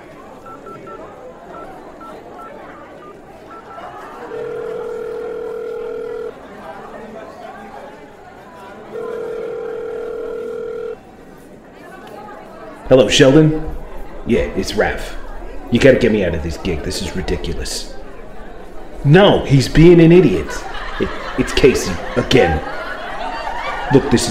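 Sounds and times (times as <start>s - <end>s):
low murmur of chatter: 0.0s - 24.2s
telephone dial tone while placing a call on a borrowed phone: 0.4s - 6.3s, 8.9s - 11.0s
laughter: 3.0s - 7.2s, 18.4s - 24.2s
speech: 12.9s - 13.7s, 14.3s - 18.0s, 19.0s - 22.8s, 23.9s - 24.2s.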